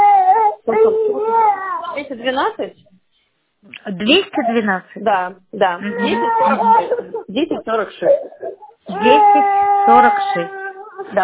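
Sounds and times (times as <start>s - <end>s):
young child crying: 0.0s - 2.0s, 5.8s - 7.0s, 8.4s - 11.2s
speech: 2.0s - 2.9s, 3.6s - 11.2s
laughter: 6.0s - 7.4s.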